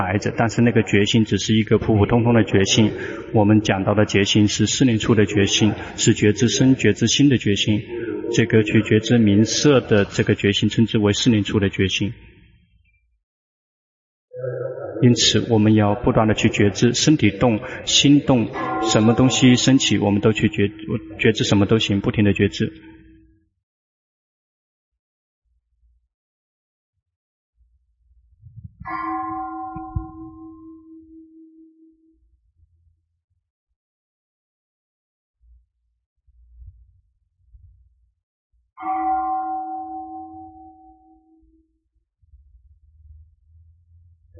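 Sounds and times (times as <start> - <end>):
speech: 0.0 - 12.3, 14.4 - 22.9
meditation bell ringing: 17.1 - 22.0, 28.9 - 32.0, 38.8 - 41.6
faint low thumps: 28.4 - 28.8.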